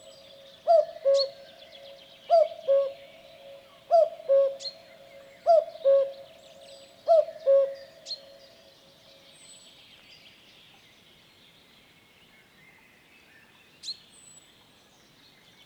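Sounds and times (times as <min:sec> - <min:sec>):
common cuckoo calling a clear low cu-coo: 0:00.0 - 0:01.4, 0:02.3 - 0:04.8, 0:05.4 - 0:08.0.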